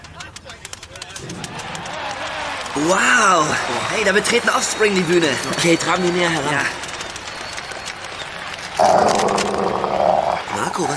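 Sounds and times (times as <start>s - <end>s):
speech: 2.8s - 6.8s, 10.8s - 10.9s
dog growling with a rough steady rumble: 8.8s - 10.5s.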